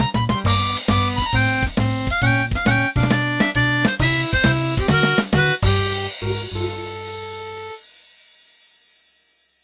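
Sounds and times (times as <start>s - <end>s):
game over music: 0.2s - 7.8s.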